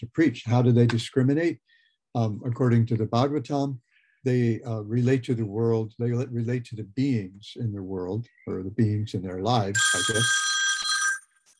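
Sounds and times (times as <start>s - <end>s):
speech: 0.0s - 10.5s
mobile phone ringing with a bell-like electronic tone: 9.8s - 11.4s.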